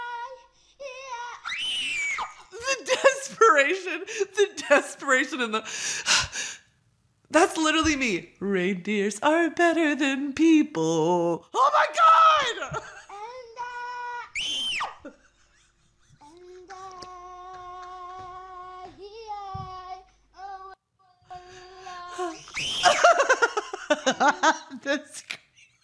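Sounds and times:
high-pitched screams played from a video: 1.4s - 2.4s, 14.2s - 15.0s, 22.4s - 23.0s
speech: 3.5s - 6.2s, 7.3s - 12.9s, 24.2s - 25.3s
laughter: 22.2s - 25.8s.

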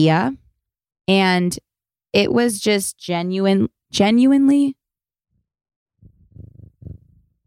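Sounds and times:
speech: 0.0s - 0.4s, 1.1s - 4.8s
cat purring into the microphone: 6.0s - 7.4s.

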